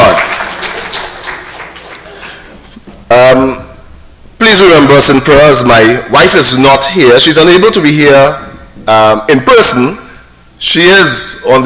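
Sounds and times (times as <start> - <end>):
audience applause: 0.0 - 2.6
speech: 3.1 - 3.6, 4.9 - 10.0, 10.6 - 11.6.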